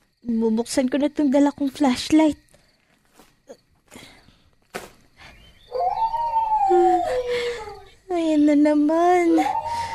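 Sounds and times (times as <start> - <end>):
speech: 0.2 - 2.4, 8.2 - 9.6
soft footsteps: 2.8 - 3.9
dog howling outside at night: 5.7 - 7.9, 9.4 - 9.9.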